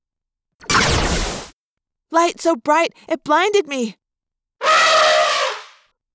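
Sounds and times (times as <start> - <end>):
sci-fi Dracon beam weapon firing: 0.6 - 1.5
speech: 2.1 - 4.0
elephant screaming in pain: 4.6 - 5.8.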